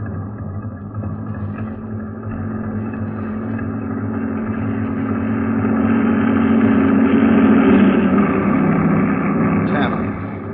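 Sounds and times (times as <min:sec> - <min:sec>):
heavy truck engine in a convoy rumbling past: 0:00.0 - 0:10.5.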